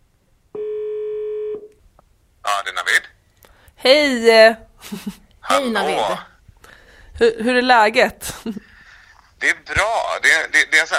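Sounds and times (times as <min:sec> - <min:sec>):
telephone ringing tone: 0:00.6 - 0:01.7
speech: 0:03.8 - 0:06.3, 0:07.2 - 0:08.7, 0:09.4 - 0:10.9.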